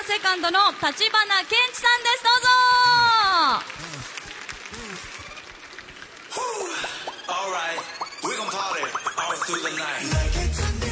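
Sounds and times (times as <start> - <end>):
crowd applause welcoming a guest: 0.0 - 7.3
speech: 0.1 - 3.8, 7.4 - 10.8.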